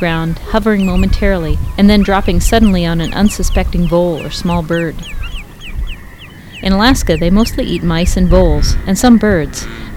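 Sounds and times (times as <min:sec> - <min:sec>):
speech: 0:00.0 - 0:05.2, 0:06.6 - 0:09.9
low rumble: 0:00.0 - 0:09.7
northern harrier calling with thin downslurred whistled notes: 0:00.7 - 0:08.2.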